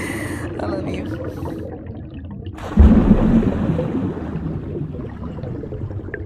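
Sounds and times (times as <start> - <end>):
speech: 0.9 - 2.0
loud water splash with churning rushing water: 2.6 - 5.2.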